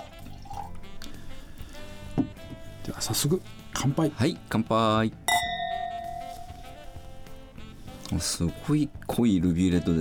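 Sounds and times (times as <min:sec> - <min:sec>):
red wine pouring into a glass: 0:00.2 - 0:01.0
speech: 0:02.2 - 0:05.2, 0:08.1 - 0:09.9.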